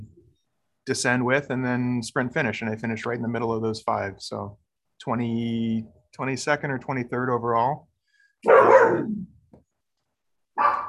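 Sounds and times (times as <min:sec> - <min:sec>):
speech: 0:00.8 - 0:09.4
pet dogs barking at neighbouring dogs: 0:08.4 - 0:09.1, 0:10.6 - 0:10.8.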